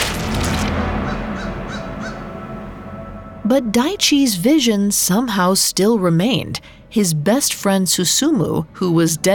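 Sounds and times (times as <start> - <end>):
low rumbling ambience: 0.0 - 9.3
crow cawing: 1.0 - 2.3
speech: 3.5 - 9.3.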